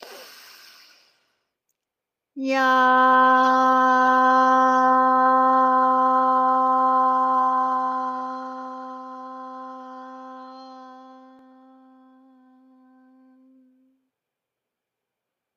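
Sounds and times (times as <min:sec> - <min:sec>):
soft breathy inhale during a meditation: 0:00.0 - 0:01.4
person singing a sustained tone on the out-breath during a meditation: 0:02.4 - 0:14.0.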